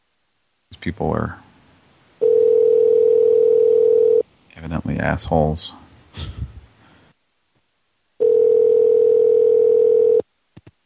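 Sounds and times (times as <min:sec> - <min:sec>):
speech: 0:00.8 - 0:01.4, 0:04.6 - 0:06.4
telephone ringing tone on a call: 0:02.2 - 0:04.2, 0:08.2 - 0:10.2.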